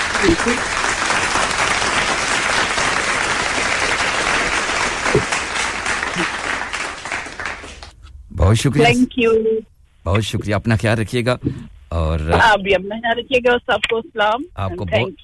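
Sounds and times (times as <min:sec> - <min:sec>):
applause for a performer after a song: 0:00.0 - 0:08.0
speech: 0:00.2 - 0:00.8, 0:05.2 - 0:05.4, 0:06.2 - 0:06.4, 0:08.5 - 0:15.2.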